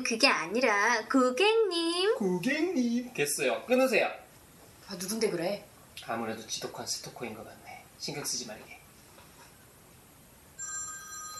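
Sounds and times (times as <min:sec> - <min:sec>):
speech: 0:00.0 - 0:04.2, 0:04.9 - 0:08.8
telephone ringing with electronic trill: 0:10.6 - 0:11.3.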